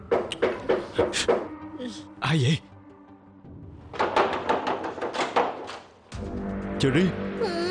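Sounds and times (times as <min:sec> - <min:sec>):
knocking on a door: 0:00.0 - 0:01.5, 0:03.9 - 0:05.8
speech: 0:02.3 - 0:02.7, 0:06.8 - 0:07.6.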